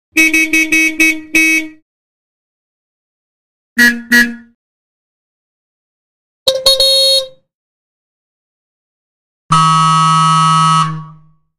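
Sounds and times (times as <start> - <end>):
car horn honks: 0.2 - 1.8, 3.8 - 4.5, 6.5 - 7.4, 9.5 - 11.3.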